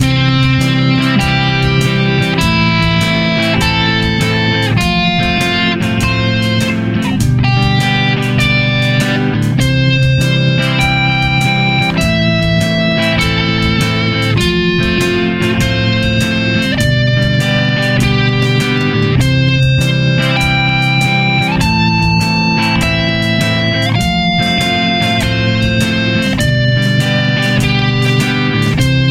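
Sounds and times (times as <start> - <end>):
bass playing roots and fifths: 0.0 - 29.0.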